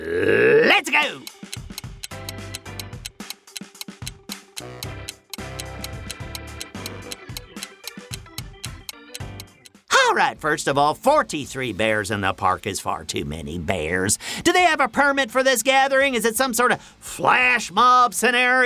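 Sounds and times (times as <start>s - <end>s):
looping electronic music bed: 0.9s - 9.8s
quiz countdown clock ticking: 0.9s - 9.8s
speech: 1.0s - 1.4s, 10.1s - 18.6s.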